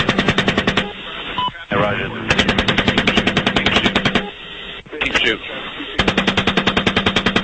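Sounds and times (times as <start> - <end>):
automatic machine-gun fire during a military combat engagement: 0.0 - 0.9, 2.3 - 4.3, 6.0 - 7.4
speech: 5.3 - 5.5.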